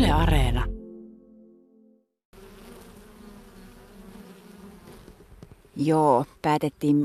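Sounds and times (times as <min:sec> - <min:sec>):
speech: 0:00.1 - 0:00.7, 0:05.8 - 0:07.0
many honeybees buzzing around their hive: 0:02.3 - 0:07.0.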